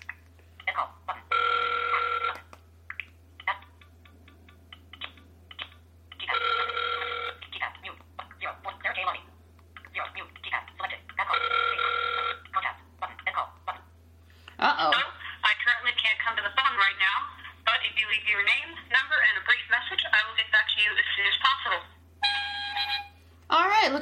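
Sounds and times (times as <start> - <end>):
steady low hum: 0.0 - 23.9
FaceTime call ringing tone: 0.6 - 2.5, 6.2 - 7.8, 11.1 - 13.8, 21.6 - 23.2.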